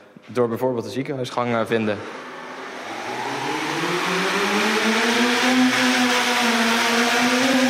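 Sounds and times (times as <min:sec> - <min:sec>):
speech: 0:00.2 - 0:02.3
drone motors whining while carrying a medicine box along a university corridor: 0:02.0 - 0:07.6.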